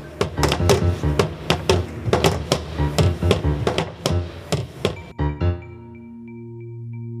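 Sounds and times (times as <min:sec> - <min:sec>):
lockers banging shut: 0:00.0 - 0:05.1.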